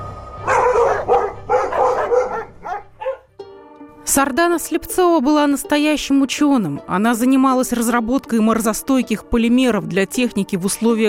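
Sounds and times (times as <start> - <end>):
dogs barking: 0.4 - 3.3
speech: 4.1 - 11.0.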